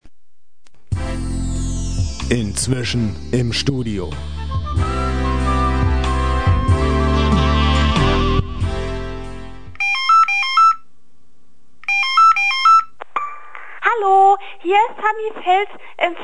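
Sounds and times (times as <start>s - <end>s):
loud dense music: 0.9s - 9.7s
speech: 2.3s - 4.9s, 14.8s - 16.2s
telephone ringing with a bright electronic ringtone melody: 9.8s - 10.8s, 11.9s - 12.9s.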